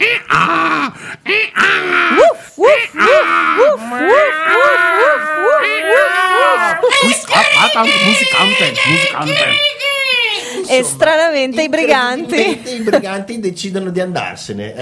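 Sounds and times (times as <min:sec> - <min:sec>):
people imitating donkey, dog, cat and rooster calls: 0:00.0 - 0:10.9
speech: 0:08.2 - 0:09.7, 0:10.7 - 0:14.8.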